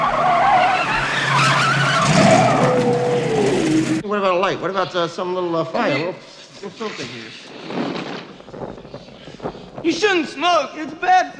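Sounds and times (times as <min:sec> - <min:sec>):
car tires skidding and squealing as the steering wheel is turned hard: 0:00.0 - 0:04.0
rough car engine roar: 0:00.0 - 0:04.0
speech: 0:04.4 - 0:07.9, 0:08.6 - 0:11.3.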